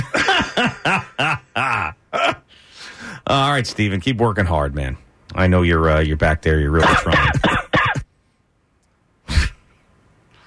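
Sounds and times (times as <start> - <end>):
person coughing: 0.0 - 2.5, 6.8 - 8.1
speech: 3.3 - 7.5.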